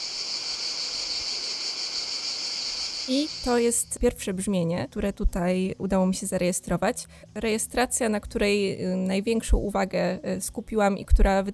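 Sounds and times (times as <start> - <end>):
cicada buzzing from timbal membranes: 0.0 - 4.0
speech: 3.1 - 11.5.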